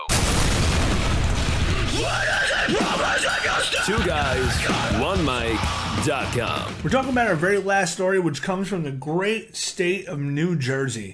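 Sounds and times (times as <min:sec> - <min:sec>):
explosion sound effect with heavy rumbling roar: 0:00.0 - 0:07.1
speech: 0:02.0 - 0:11.1.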